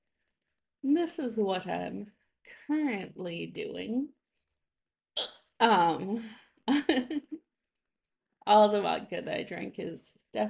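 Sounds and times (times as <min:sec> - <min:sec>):
speech: 0:00.8 - 0:04.2, 0:05.2 - 0:07.4, 0:08.5 - 0:10.4
hiccups: 0:05.2 - 0:05.5.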